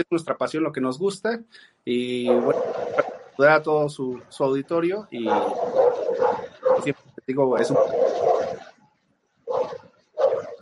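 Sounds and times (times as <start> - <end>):
speech: 0.0 - 5.8, 6.8 - 8.0
dog barking: 2.3 - 3.3, 5.2 - 7.0, 7.6 - 8.7, 9.5 - 10.6.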